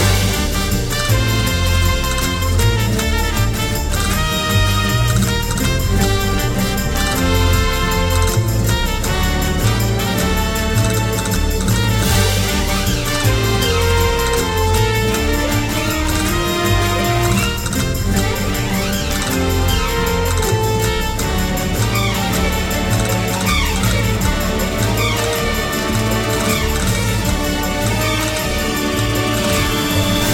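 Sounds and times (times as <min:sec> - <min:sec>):
market music loop: 0:00.0 - 0:30.3.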